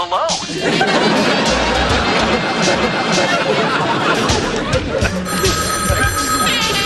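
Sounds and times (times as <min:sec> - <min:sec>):
dense noisy crowd chatter: 0:00.0 - 0:06.8
laughter: 0:00.2 - 0:06.8
telephone ringing: 0:05.2 - 0:06.8.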